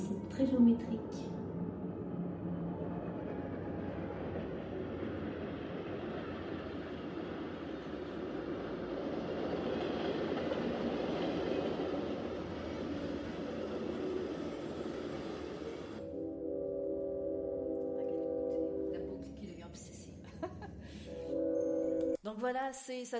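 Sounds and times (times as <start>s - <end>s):
speech: 0.0s - 1.4s, 22.5s - 23.1s
train ride rumbling heard from inside: 0.0s - 22.2s.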